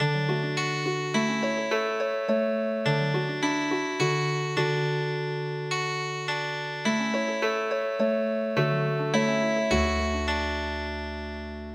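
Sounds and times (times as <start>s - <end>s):
chime melody played on harp: 0.0s - 11.7s.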